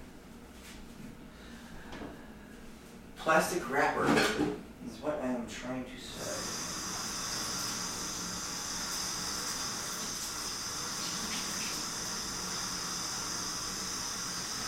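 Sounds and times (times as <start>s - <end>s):
speech: 3.2s - 6.6s
running water rinsing off the sides of an item being washed: 6.1s - 14.6s.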